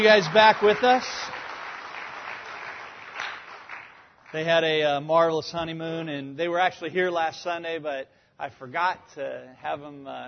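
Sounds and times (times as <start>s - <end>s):
speech: 0.0s - 1.2s, 4.3s - 10.2s
audience applause for a newly married couple: 0.0s - 4.4s.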